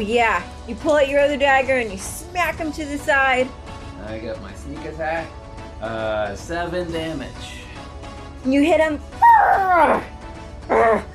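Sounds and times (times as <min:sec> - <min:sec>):
speech: 0:00.0 - 0:07.6, 0:08.4 - 0:10.1, 0:10.7 - 0:11.1
voice imitating a snarling creature: 0:10.7 - 0:11.1.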